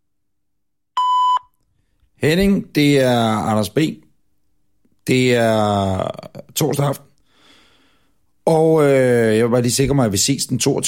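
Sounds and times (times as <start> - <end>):
answering machine beep tone: 1.0 - 1.5
speech: 2.2 - 4.0, 5.1 - 7.1, 8.5 - 10.8.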